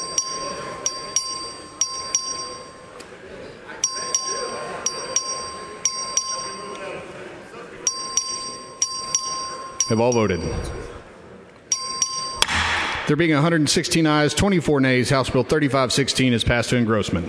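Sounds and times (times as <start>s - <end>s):
voting bell rung by a clerk for a record vote: 0.0s - 3.0s, 3.8s - 6.8s, 7.8s - 10.9s, 11.7s - 12.5s
low murmur of chatter: 0.0s - 17.2s
speech: 9.9s - 11.0s, 13.1s - 17.2s.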